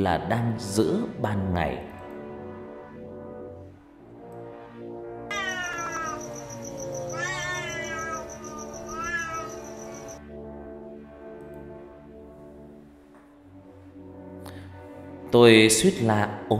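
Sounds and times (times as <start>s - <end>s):
speech: 0.0s - 1.9s, 15.3s - 16.5s
low tonal background: 1.8s - 15.5s
cat leaping out of bushes and yowling: 5.3s - 10.2s.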